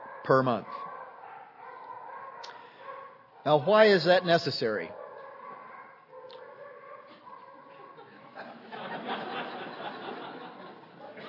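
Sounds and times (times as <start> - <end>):
dog barking and yelping: 0.0 - 3.7, 4.9 - 8.4
speech: 0.2 - 0.9, 3.4 - 5.0
laughter: 7.6 - 11.2.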